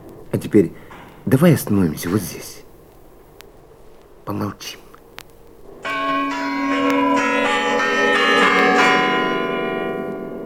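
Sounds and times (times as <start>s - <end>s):
speech: 0.5s - 2.6s, 4.3s - 4.8s
church bells ringing a quarter-hour chime: 5.8s - 10.4s.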